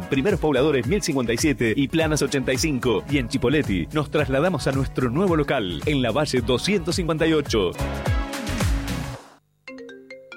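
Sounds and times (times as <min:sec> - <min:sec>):
speech: 0:00.1 - 0:08.2
phone ringtone playing a short electronic melody: 0:09.6 - 0:10.3.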